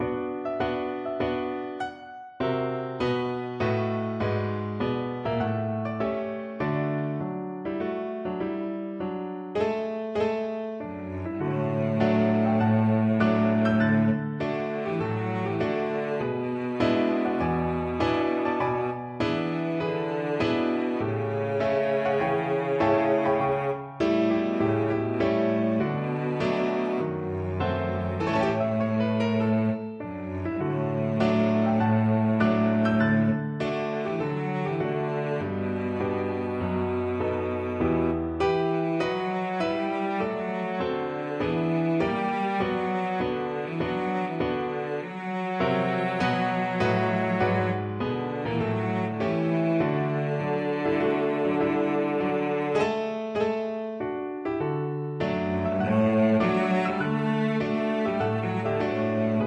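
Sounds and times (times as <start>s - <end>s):
cello: 0.0s - 59.4s.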